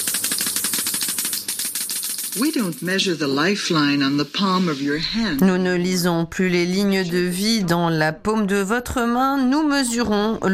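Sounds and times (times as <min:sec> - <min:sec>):
Geiger counter clicking: 0:00.0 - 0:03.7
speech: 0:02.3 - 0:10.5.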